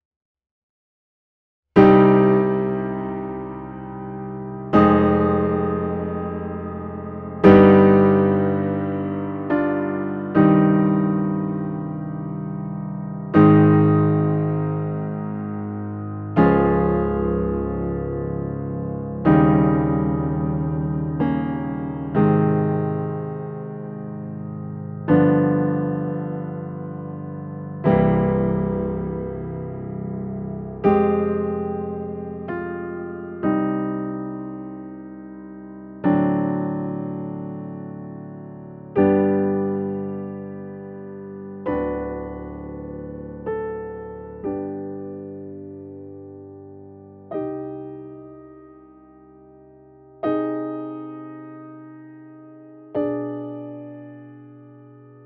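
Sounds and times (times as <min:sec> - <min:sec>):
loud Steinway D grand piano with closed lid: 0:01.8 - 0:55.2.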